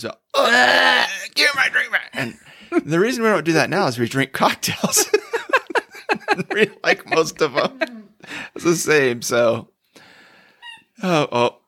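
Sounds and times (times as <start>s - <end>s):
speech: 0.0s - 5.2s, 6.4s - 9.7s, 11.0s - 11.6s
laughter: 4.8s - 8.8s
dog's squeaky toy squeaking: 10.6s - 10.9s.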